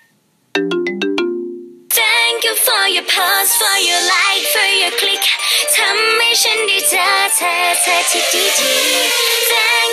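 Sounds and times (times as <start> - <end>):
bright plucked synth notes in Thai pop song intro: 0.6 - 1.9
fuller brighter synth layer in Thai pop song intro: 0.6 - 9.9
speech: 3.2 - 9.9.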